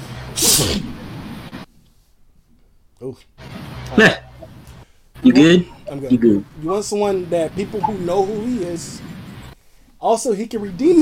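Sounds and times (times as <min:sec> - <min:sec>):
person sneezing: 0:00.4 - 0:00.9
speech: 0:00.4 - 0:00.9, 0:03.0 - 0:04.6, 0:05.2 - 0:09.1, 0:10.0 - 0:11.0.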